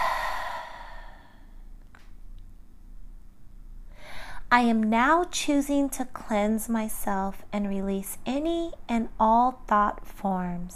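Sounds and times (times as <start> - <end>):
deep breathy exhale during a guided breathing meditation: 0.0 - 1.6
faint breath: 0.0 - 1.7, 3.9 - 4.5
speech: 4.5 - 10.7.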